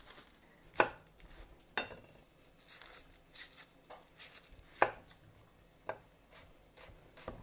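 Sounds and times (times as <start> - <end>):
knife chopping an onion: 0.7 - 2.1, 2.7 - 5.2, 5.8 - 7.4.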